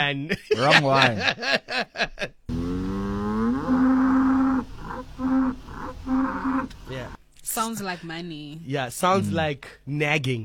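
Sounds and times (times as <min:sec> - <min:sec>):
speech: 0:00.0 - 0:02.8, 0:07.6 - 0:10.4
laughter: 0:00.3 - 0:02.4
Ankole cattle mooing: 0:02.5 - 0:07.2.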